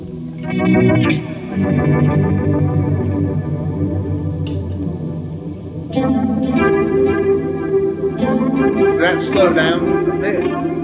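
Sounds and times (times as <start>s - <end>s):
electric guitar through chorus pedal with increased depth, swirling sustained chords: 0.0s - 10.8s
speech: 0.5s - 2.9s, 9.0s - 10.7s.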